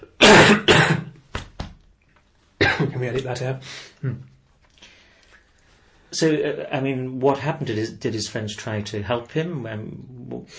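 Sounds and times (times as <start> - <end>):
person coughing: 0.0 - 1.2, 2.6 - 3.1
speech: 3.0 - 4.4, 6.1 - 10.5.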